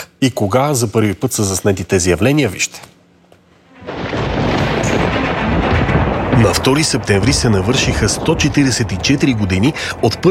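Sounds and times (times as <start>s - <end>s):
speech: 0.2s - 2.9s, 6.4s - 10.2s
thunderclap from a lightning strike with crackling rumble: 3.8s - 10.2s.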